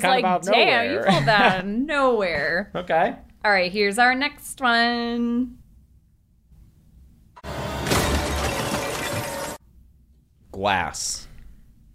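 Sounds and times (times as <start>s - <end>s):
speech: 0.0s - 5.6s, 10.6s - 11.3s
glass shattering: 7.7s - 9.6s.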